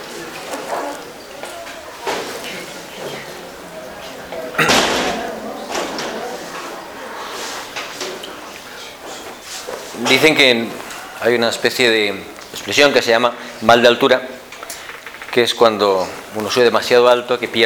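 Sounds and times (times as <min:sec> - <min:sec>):
low murmur of voices: 0:00.0 - 0:17.6
room noise in a reverberant space: 0:00.0 - 0:17.6
door shutting with a single solid slam: 0:04.6 - 0:06.2
speech: 0:10.2 - 0:14.4, 0:15.4 - 0:17.6.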